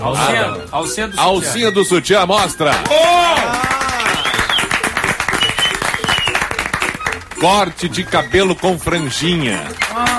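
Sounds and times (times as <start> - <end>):
speech: 0.0 - 3.7, 7.4 - 10.1
studio audience applause: 2.8 - 7.6.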